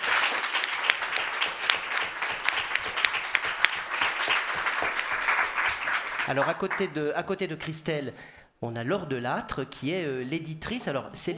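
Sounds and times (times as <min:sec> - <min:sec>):
audience applauding a prize-winning author: 0:00.0 - 0:06.9
speech: 0:06.3 - 0:11.3.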